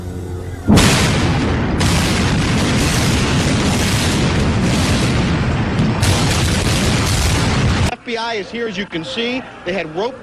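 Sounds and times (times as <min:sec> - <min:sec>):
huge explosion: 0:00.7 - 0:07.9
speech: 0:08.5 - 0:10.2.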